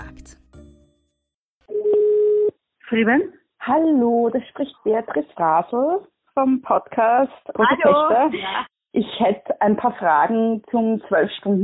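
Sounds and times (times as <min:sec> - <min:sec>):
telephone dial tone: 0:01.7 - 0:02.5
speech: 0:02.9 - 0:11.6.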